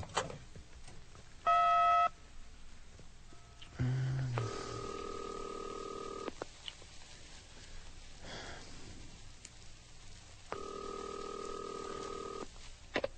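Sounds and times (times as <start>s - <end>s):
faint hiss: 0.0s - 13.1s
steady telephone tones: 1.5s - 2.2s, 4.3s - 6.4s, 10.5s - 12.5s.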